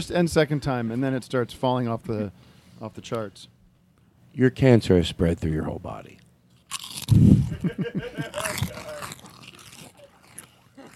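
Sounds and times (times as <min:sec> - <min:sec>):
speech: 0:00.0 - 0:03.6, 0:04.4 - 0:06.2, 0:07.1 - 0:08.7
crunching and chewing food close to microphones: 0:06.1 - 0:07.6, 0:08.2 - 0:10.9
laughter: 0:07.5 - 0:09.2, 0:10.8 - 0:10.9.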